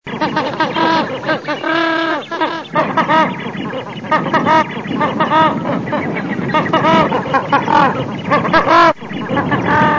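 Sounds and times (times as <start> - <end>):
goose calling in Argentina: 0.1 - 9.9.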